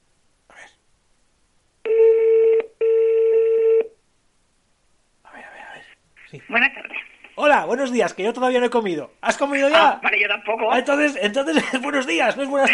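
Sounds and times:
telephone electronic tones placing a call: 1.9 - 3.9
speech: 7.5 - 12.7
laughter: 11.5 - 12.7.

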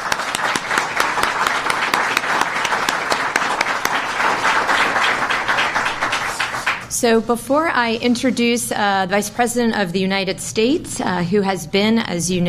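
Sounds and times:
sizable crowd applauding: 0.0 - 6.9
speech: 7.0 - 12.4.

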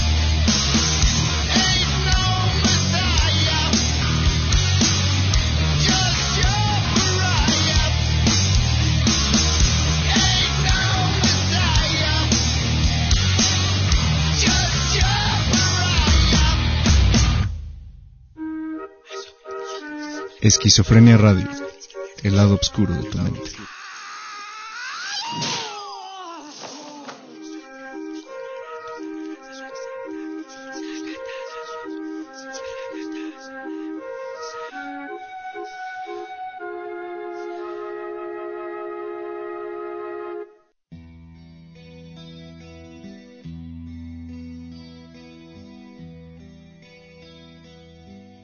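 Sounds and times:
heavy metal song with distorted effects-laden tones: 0.0 - 18.0
speech: 20.5 - 23.6.

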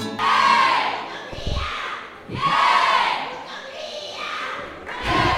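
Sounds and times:
carnival group shouting a battle cry: 0.2 - 5.3
dull thumps: 1.3 - 2.8.

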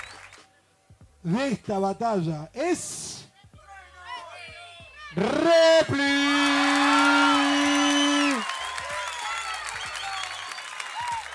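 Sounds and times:
large crowd clapping and cheering: 0.0 - 0.5, 4.9 - 11.3
speech: 1.2 - 3.1, 5.2 - 6.4
whoops: 5.9 - 11.3.

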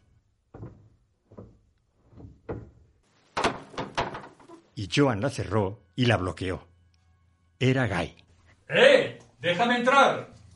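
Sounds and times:
soft thuds of a door: 0.5 - 4.4
door rattling and scraping as it swings open: 0.5 - 4.6
speech: 4.8 - 6.7, 7.6 - 10.5.

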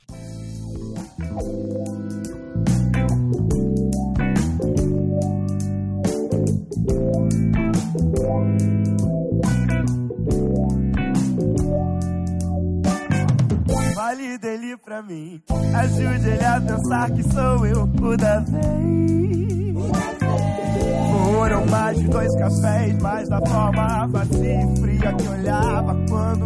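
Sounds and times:
song with full instrumental backing: 0.0 - 14.5, 15.5 - 26.4
speech: 1.2 - 2.6, 14.1 - 26.4.

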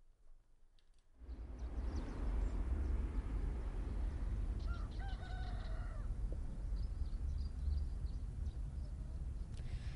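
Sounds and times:
steady outdoor rumble near a volcano: 1.2 - 9.9
rooster crowing in the morning near a volcano: 4.7 - 6.1.

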